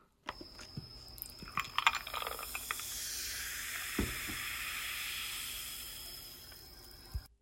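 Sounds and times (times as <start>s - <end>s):
carbonated water fizzing: 1.1s - 7.3s.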